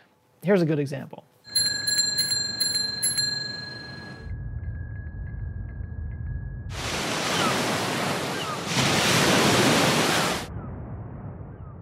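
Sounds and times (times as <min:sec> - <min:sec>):
speech: 0:00.4 - 0:01.3
bright bell chimes: 0:01.5 - 0:06.7
loud roaring wind-like surf: 0:06.7 - 0:10.5
darker duller surf simulating sound on Mars: 0:06.7 - 0:11.4.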